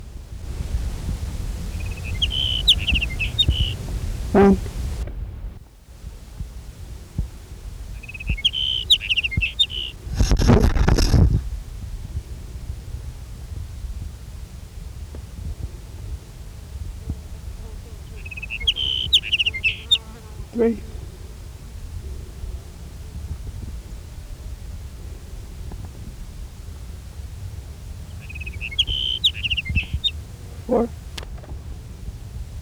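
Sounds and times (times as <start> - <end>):
sage sparrow song in California: 0.5 - 5.0, 7.7 - 11.2, 17.9 - 21.2, 27.9 - 31.2
speech: 4.4 - 4.7, 20.6 - 20.8.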